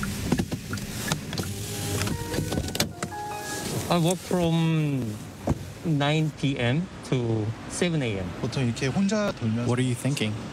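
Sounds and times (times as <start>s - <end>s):
delivery truck engine rumble in narrow alleys in Incheon City: 0.0s - 6.4s
speech: 3.9s - 10.5s.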